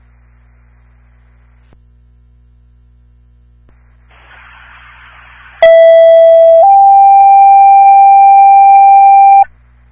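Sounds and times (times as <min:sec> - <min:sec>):
fire station dispatch alert tones: 0:05.6 - 0:09.5.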